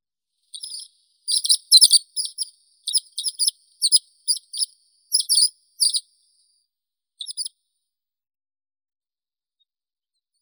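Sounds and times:
horned lark Eremophila alpestris singing: 0.5 - 6.1, 7.2 - 7.5.

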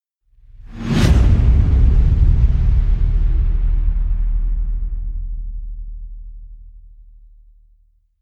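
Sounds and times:
whoosh: 0.4 - 6.7
booms: 0.4 - 7.2.

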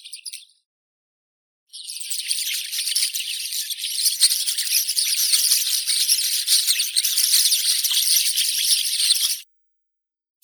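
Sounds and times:
rosy starling Sturnus roseus: 1.7 - 9.4.

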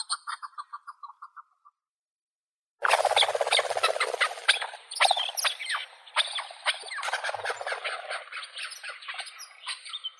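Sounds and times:
chukar Alectoris chukar calling: 2.8 - 8.7.

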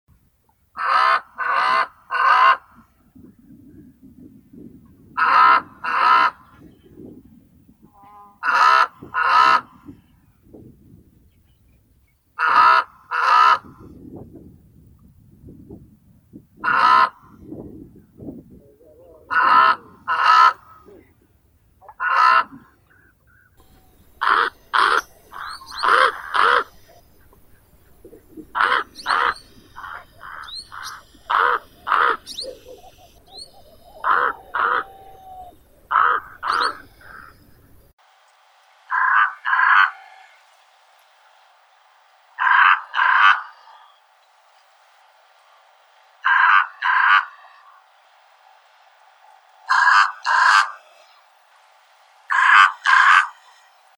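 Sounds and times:
brown-necked raven Corvus ruficollis calling: 0.8 - 2.8, 5.2 - 6.6, 8.0 - 9.9, 12.4 - 13.8, 16.6 - 17.4, 19.0 - 21.1, 21.8 - 37.8, 38.9 - 40.4, 42.4 - 44.2, 46.2 - 48.0, 49.6 - 51.3, 52.3 - 53.8.

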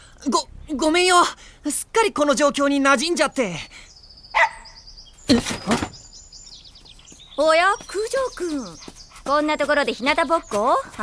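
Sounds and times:
faint high chirping birds: 0.0 - 11.0
speech: 0.2 - 3.9, 5.3 - 5.8, 7.4 - 11.0
dog barking: 4.4 - 4.8.

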